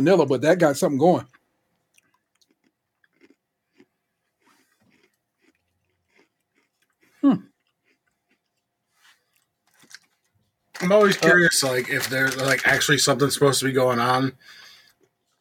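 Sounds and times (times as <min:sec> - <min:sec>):
speech: 0:00.0 - 0:01.4, 0:07.2 - 0:07.5, 0:10.8 - 0:14.6
chewing clicks and smacks: 0:01.2 - 0:10.3
crisp Oreo sandwich cookie crunching: 0:01.2 - 0:14.1.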